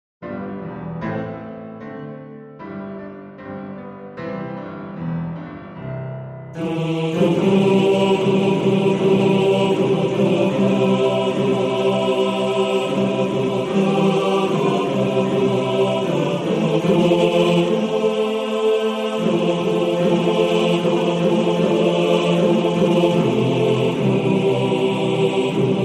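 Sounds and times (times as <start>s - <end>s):
choir singing: 6.6s - 25.8s.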